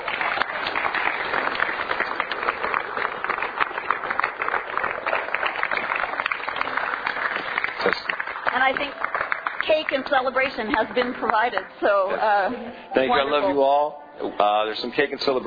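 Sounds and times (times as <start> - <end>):
room full of people applauding: 0.0 - 12.3
speech: 8.7 - 9.0, 9.6 - 15.4.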